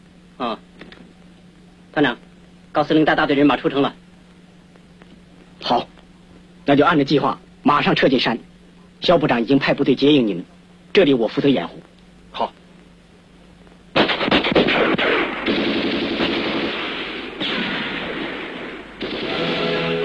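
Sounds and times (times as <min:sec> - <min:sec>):
speech: 0:00.4 - 0:00.7, 0:02.0 - 0:04.0, 0:05.7 - 0:05.9, 0:06.7 - 0:12.6
enemy machine-gun bursts during an urban uprising: 0:14.0 - 0:19.9.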